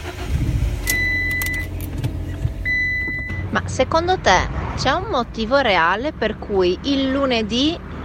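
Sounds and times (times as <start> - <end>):
car engine cranking without catching, churning rumble with high whine: 0.0 - 8.0
speech: 3.6 - 7.8.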